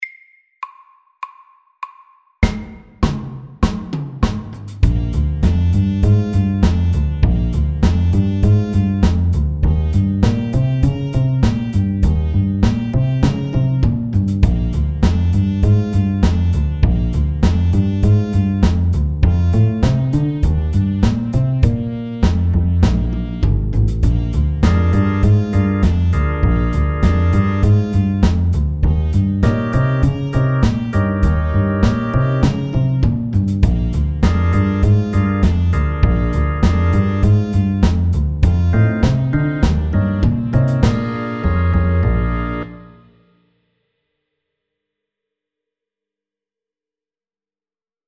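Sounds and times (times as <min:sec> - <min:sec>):
fast walking bass line: 0:04.8 - 0:42.9.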